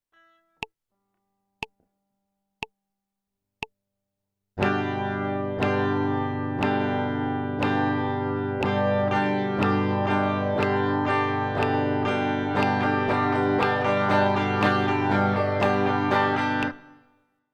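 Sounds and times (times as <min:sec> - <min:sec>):
guitar strumming sixteenth notes in G: 0:04.6 - 0:17.0.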